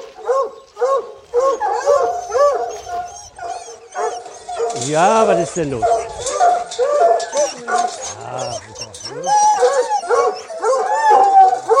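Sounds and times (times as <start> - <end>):
several male dogs barking and yelping in a kennel: 0.0 - 11.7
speech: 4.8 - 6.3, 7.6 - 10.4.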